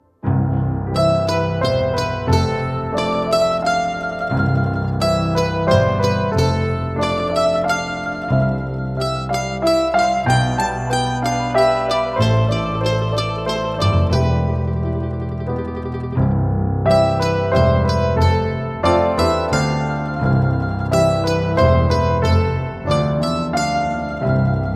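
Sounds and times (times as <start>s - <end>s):
piano mix: 0.0s - 24.7s.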